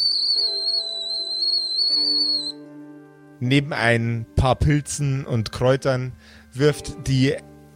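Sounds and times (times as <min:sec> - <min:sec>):
kettle whistling as water boils: 0:00.0 - 0:02.6
speech: 0:00.2 - 0:01.0, 0:03.4 - 0:07.5.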